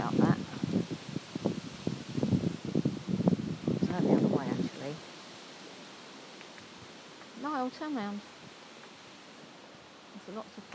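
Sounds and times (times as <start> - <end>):
wind buffeting an exposed outdoor microphone on a very windy day: 0.0 - 5.2
speech: 7.8 - 8.3, 10.3 - 10.7.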